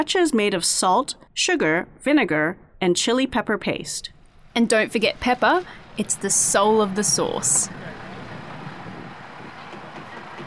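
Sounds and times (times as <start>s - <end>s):
speech: 0.0s - 8.0s
tractor harvesting peppers in a field: 4.5s - 10.4s.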